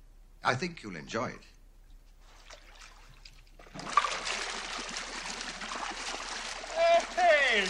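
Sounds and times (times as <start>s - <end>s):
speech: 0.4s - 1.5s
water bubbling from the jets of a whirlpool bath: 2.5s - 7.6s.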